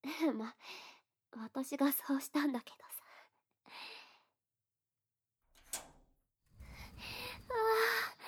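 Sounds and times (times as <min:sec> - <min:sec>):
speech: 0:00.0 - 0:03.0
heavy door of a sealed gym storage room scraping and sliding open: 0:06.6 - 0:08.1.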